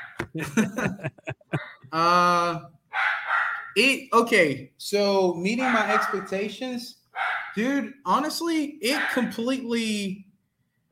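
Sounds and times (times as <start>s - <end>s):
dog barking: 0.0s - 0.2s, 2.9s - 3.8s, 5.6s - 6.4s, 7.2s - 7.6s, 8.9s - 9.3s
laughter: 0.2s - 2.2s
speech: 0.4s - 2.7s, 3.8s - 7.0s, 7.6s - 10.3s.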